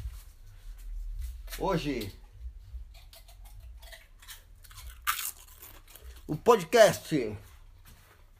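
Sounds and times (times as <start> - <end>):
speech: 1.6 - 2.2, 6.3 - 7.5
chewing: 2.7 - 6.4
crunchy bites of a snack: 3.0 - 6.3.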